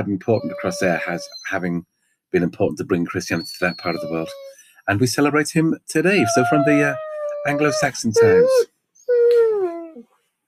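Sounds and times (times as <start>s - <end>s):
speech: 0.0s - 8.7s
dog whimpering: 0.2s - 1.6s, 3.3s - 4.6s, 6.1s - 10.1s.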